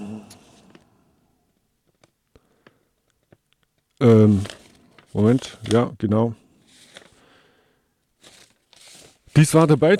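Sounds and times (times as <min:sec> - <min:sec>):
speech: 0:04.0 - 0:04.6, 0:05.2 - 0:06.4, 0:09.4 - 0:09.9
paper sheets rustling and crinkling: 0:04.0 - 0:06.0, 0:06.7 - 0:07.3, 0:08.2 - 0:09.9.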